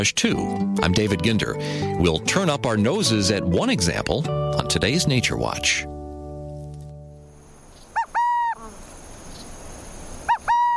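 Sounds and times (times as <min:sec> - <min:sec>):
speech: 0:00.0 - 0:06.0
faint outdoor hiss: 0:00.0 - 0:10.7
burrowing owl calling: 0:07.8 - 0:08.9, 0:10.2 - 0:10.7.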